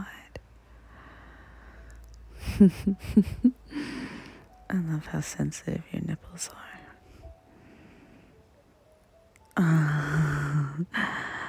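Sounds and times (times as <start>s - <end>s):
speech: 2.6s - 3.8s, 4.7s - 6.8s, 9.6s - 10.2s, 10.8s - 11.3s
person gasping loudly: 3.7s - 4.4s, 9.7s - 11.4s.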